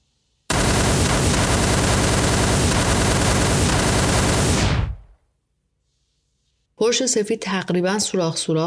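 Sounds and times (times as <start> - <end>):
gunfire: 0.5 - 5.2
speech: 6.8 - 8.6.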